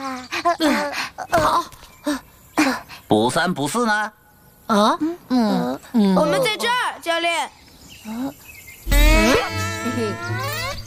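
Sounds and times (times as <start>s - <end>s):
speech: 0.5s - 2.2s, 3.1s - 8.4s, 9.4s - 10.5s
mosquitoes buzzing: 8.8s - 10.8s.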